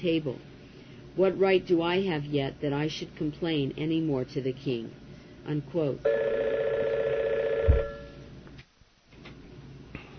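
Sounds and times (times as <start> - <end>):
speech: 0.0 - 0.5, 1.2 - 7.0
telephone ringing with an electronic trill: 6.0 - 8.3.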